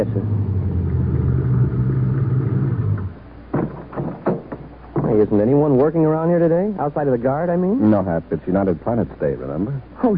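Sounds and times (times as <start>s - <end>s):
speech: 0.0s - 0.5s, 5.2s - 10.1s
car engine rumbling: 0.0s - 5.4s.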